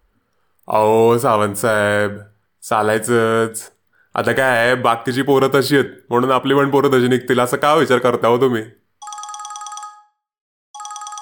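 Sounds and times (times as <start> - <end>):
speech: 0.7 - 8.8
telephone ringing with electronic rapidly pulsing ringtone: 9.0 - 10.2, 10.8 - 11.1.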